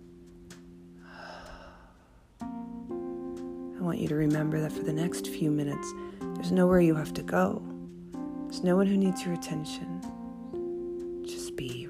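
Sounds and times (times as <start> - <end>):
deep breath in through nose and out through mouth during guided meditation: 1.0 - 2.3
speech: 3.8 - 7.7, 8.5 - 10.1.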